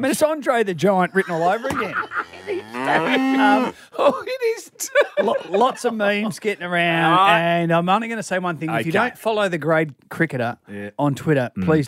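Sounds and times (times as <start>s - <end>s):
speech: 0.0s - 11.8s
laughter: 1.1s - 7.4s
cow mooing: 1.4s - 3.8s.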